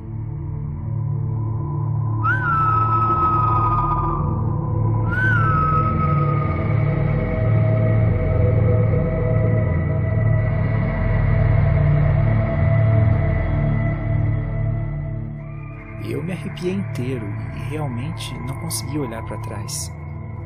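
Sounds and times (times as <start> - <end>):
steady low droning background: 0.0 - 20.4
eerie human whistling sliding downward in pitch: 1.2 - 20.4
speech: 17.0 - 20.0.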